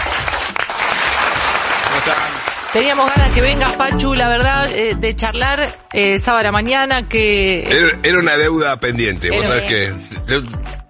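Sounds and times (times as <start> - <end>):
applause: 0.0 - 3.4
speech: 2.0 - 10.7.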